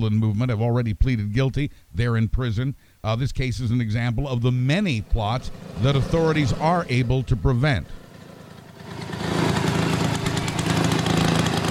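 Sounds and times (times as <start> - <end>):
speech: 0.0 - 8.0
small gasoline rototiller engine running: 5.4 - 11.6.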